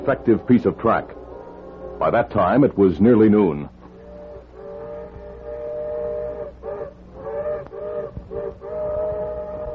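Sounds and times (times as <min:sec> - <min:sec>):
speech: 0:00.0 - 0:01.2, 0:02.0 - 0:03.8
low rumbling background: 0:00.0 - 0:09.7
steam locomotive whistle: 0:04.0 - 0:09.7.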